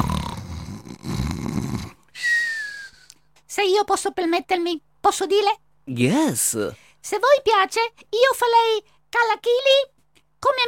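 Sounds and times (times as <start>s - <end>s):
person snoring: 0.0s - 2.1s
high whistling exhale: 2.1s - 3.1s
speech: 3.6s - 10.6s.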